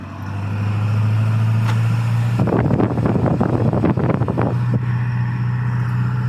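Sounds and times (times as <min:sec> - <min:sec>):
car engine revving heard from inside a car: 0:00.0 - 0:06.2.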